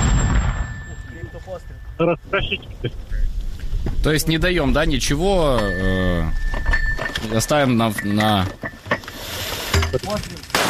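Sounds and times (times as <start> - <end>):
artillery gun firing a heavy booming shot: 0.0 - 1.0
speech: 1.6 - 8.7, 9.9 - 10.6.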